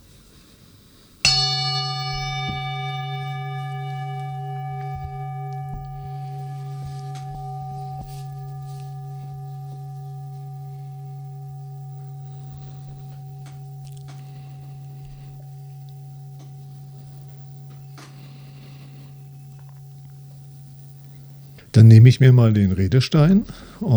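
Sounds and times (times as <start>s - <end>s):
gong struck and ringing with a deep shimmering tone: 1.2s - 19.6s
speech: 21.8s - 23.9s.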